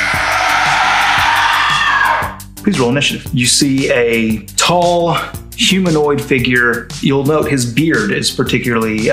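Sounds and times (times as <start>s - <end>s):
piercing scream: 0.0s - 2.4s
speech: 2.7s - 9.1s.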